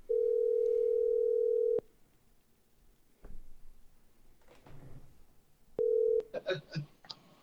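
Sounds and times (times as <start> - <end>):
telephone ringback tone: 0.1 - 1.8, 5.8 - 6.2.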